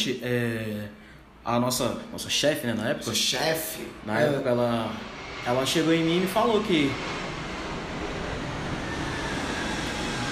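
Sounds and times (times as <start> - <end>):
speech: 0.0 - 7.3
airplane passing overhead: 3.9 - 10.3.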